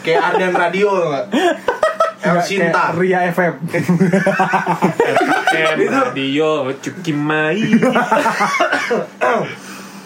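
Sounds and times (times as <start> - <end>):
laughter: 0.0 - 2.2, 3.6 - 6.2, 7.6 - 9.0
speech: 0.0 - 9.7
person coughing rough and throaty: 8.5 - 9.6.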